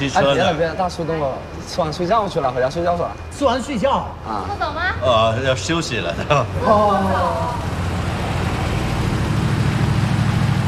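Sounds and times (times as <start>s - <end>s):
speech: 0.0s - 7.8s
Mercedes G-Class SUV engine rumbling with a broad hiss: 6.2s - 10.6s.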